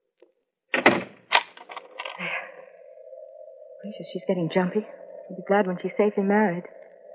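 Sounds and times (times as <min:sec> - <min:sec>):
door thudding shut: 0:00.7 - 0:01.3
faint steady hum: 0:01.7 - 0:07.1
speech: 0:03.8 - 0:06.8.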